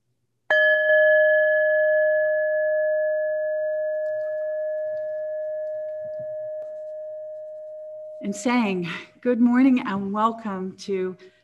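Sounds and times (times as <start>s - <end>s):
single chime struck and ringing: 0.5s - 9.0s
speech: 8.3s - 11.4s.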